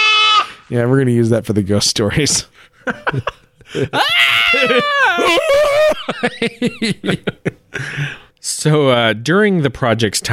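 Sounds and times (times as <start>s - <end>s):
goat screaming: 0.0s - 0.6s, 4.0s - 5.9s
speech: 0.7s - 10.3s
snickering laughter: 2.8s - 7.7s.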